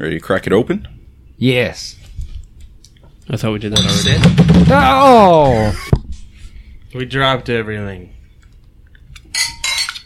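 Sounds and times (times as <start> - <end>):
speech: 0.0 - 2.0, 3.3 - 6.0, 6.9 - 8.2
glasses clinking in a toast during a beer tasting: 9.3 - 10.0.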